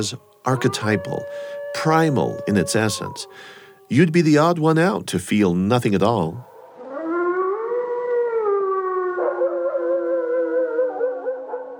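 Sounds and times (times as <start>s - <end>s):
speech: 0.0s - 6.5s
wolf howling: 0.5s - 4.0s, 6.4s - 11.7s.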